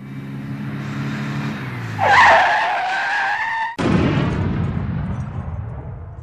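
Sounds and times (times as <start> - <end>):
car engine humming on a motorway: 0.0 - 3.6
car tires screeching in a skid: 0.0 - 3.8
rumble of crash impact and debris: 3.8 - 6.2.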